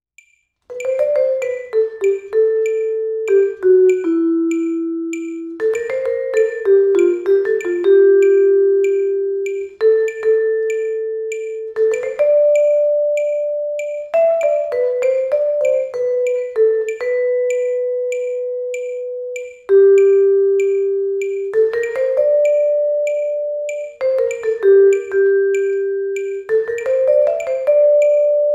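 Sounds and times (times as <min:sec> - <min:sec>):
vibraphone melody: 0:00.7 - 0:28.5.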